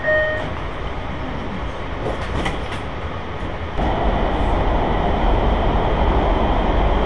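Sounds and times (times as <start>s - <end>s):
brief tones: 0.0s - 0.5s
metro subway train rumbling as it departs: 0.0s - 7.0s.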